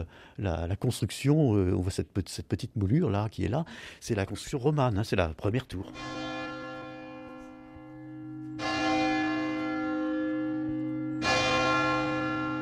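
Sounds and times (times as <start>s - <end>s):
speech: 0.0s - 6.3s
large bell of a cathedral in Saint-Malo ringing: 5.8s - 12.5s.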